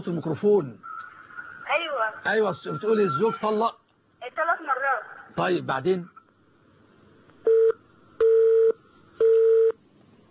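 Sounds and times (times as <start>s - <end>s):
speech: 0.0s - 0.9s, 1.7s - 3.8s, 4.4s - 6.2s
telephone ringing tones of a call coming in on a call-in line: 7.5s - 9.8s.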